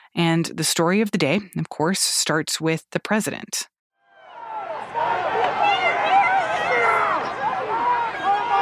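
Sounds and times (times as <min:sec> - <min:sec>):
speech: 0:00.1 - 0:03.7
dense outdoor rally crowd of thousands chattering: 0:04.2 - 0:08.6.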